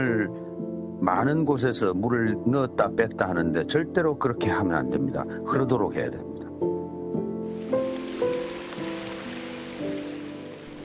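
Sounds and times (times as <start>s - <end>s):
speech: 0.0s - 6.4s
rainy-season monsoon rain pattering in Ssangsin-dong: 7.5s - 10.8s
soft slow melody of sustained tones: 7.6s - 10.8s.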